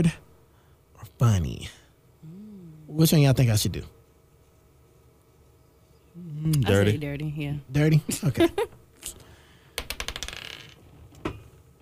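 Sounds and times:
speech: 0.0 - 0.2, 1.2 - 1.8, 2.9 - 4.0, 6.2 - 9.2
dice tumbling onto a hard surface during a party game: 9.8 - 10.8.

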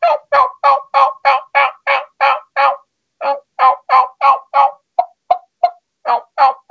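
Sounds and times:
turkey call yelps and clucks: 0.0 - 6.6.

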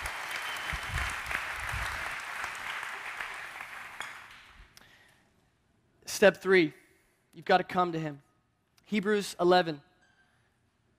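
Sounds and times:
room full of people applauding: 0.0 - 4.6
speech: 6.2 - 6.8, 7.4 - 8.3, 8.9 - 9.9.

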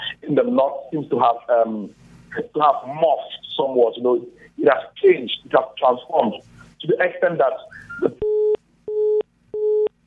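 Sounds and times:
speech: 0.3 - 8.3
phone busy tone beeps after a dropped call: 7.7 - 9.9.

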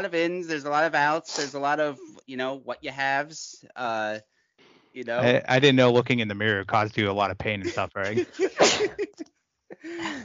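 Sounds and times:
speech: 0.0 - 4.3, 5.0 - 10.2
laughter: 5.2 - 10.2
sneeze: 8.5 - 9.0.

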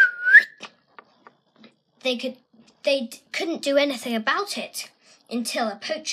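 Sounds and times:
person whistling birdlike call: 0.0 - 0.6
speech: 2.0 - 6.1.

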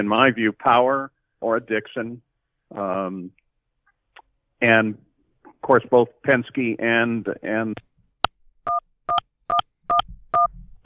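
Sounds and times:
speech: 0.0 - 3.4, 4.6 - 7.9
dual-tone beeps like telephone keypad presses on a radio feed: 8.7 - 10.8.

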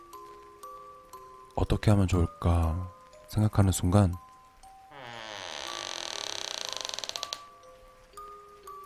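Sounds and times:
speech: 1.6 - 4.2
faint thin squeaks: 4.9 - 7.5
bedroom door creaking open slowly: 4.9 - 7.6.

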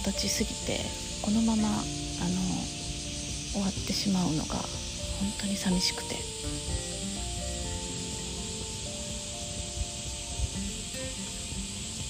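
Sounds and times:
speech: 0.0 - 2.8, 3.6 - 6.9
cicadas buzzing: 0.0 - 12.0.

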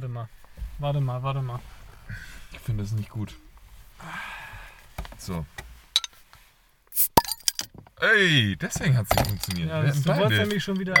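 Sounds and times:
speech: 0.2 - 4.3, 5.2 - 5.6, 7.0 - 7.2, 8.0 - 10.9
soft rustle: 0.4 - 4.0
glasses clinking in a toast: 6.0 - 6.2, 7.2 - 7.7, 9.1 - 10.9.

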